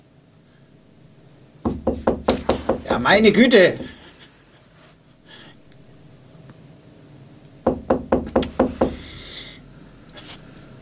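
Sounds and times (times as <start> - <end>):
firm knocks on a door: 1.7 - 4.1, 7.6 - 9.2
speech: 3.0 - 3.9.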